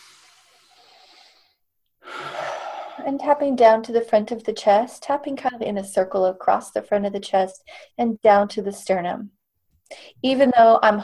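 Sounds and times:
deep breath during an emotional-freedom tapping exercise: 0.0s - 3.1s
speech: 3.0s - 11.0s.

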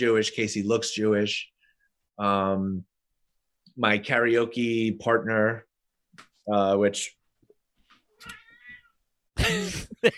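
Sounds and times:
speech: 0.0s - 1.5s, 2.2s - 2.9s, 3.8s - 7.2s, 8.2s - 8.4s, 9.4s - 10.1s
cat meowing with a drawn-out rising and falling cry: 8.1s - 9.0s.

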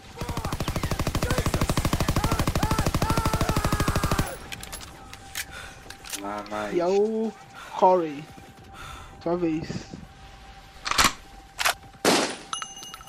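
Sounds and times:
sharp gunshots: 0.0s - 4.6s, 12.0s - 12.5s
automatic burst from a submachine gun held over the shooter's head: 0.2s - 4.4s
speech: 6.2s - 8.4s, 9.2s - 9.9s
faint ringing: 12.5s - 13.0s.

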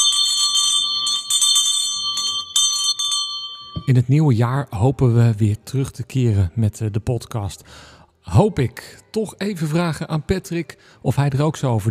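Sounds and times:
hand bell ringing: 0.0s - 4.0s
speech: 3.9s - 11.9s.

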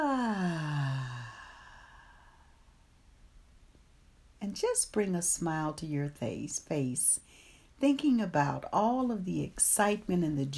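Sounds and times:
voiced exhaling sigh in a guided breathing exercise: 0.0s - 2.8s
speech: 4.6s - 10.5s.

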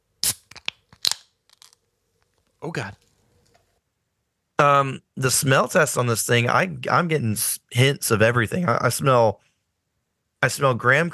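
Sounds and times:
can of lemon tea sour cracking open: 0.2s - 1.8s
crisp pops and rustles: 0.2s - 3.6s
speech: 2.6s - 3.0s, 4.6s - 9.5s, 10.4s - 11.1s.

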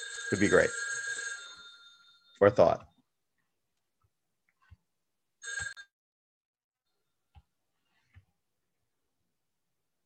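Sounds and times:
telephone bell ringing: 0.0s - 3.0s, 5.4s - 5.9s
speech: 0.3s - 0.8s, 2.4s - 2.9s.

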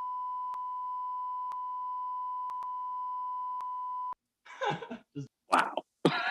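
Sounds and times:
censor bleep tone: 0.0s - 4.2s
laughter: 4.5s - 6.2s
speech: 4.6s - 5.6s.

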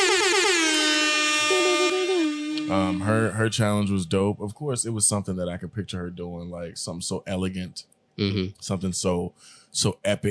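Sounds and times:
air horn blaring: 0.0s - 3.4s
speech: 2.7s - 10.2s.

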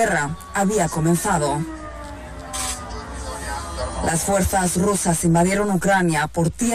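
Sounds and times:
speech: 0.0s - 1.8s, 4.0s - 6.7s
air raid sirens wailing over a city: 0.0s - 5.1s.

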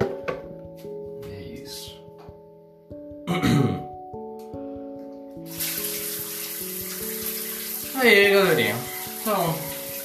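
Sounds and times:
soft music: 0.0s - 10.0s
speech: 3.3s - 3.8s, 8.0s - 9.6s
shower water rushing in a hissing spray: 5.4s - 10.0s.

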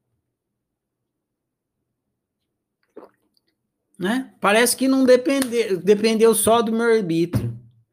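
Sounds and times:
person drinking water from a bottle: 2.8s - 3.5s
speech: 4.0s - 7.6s.

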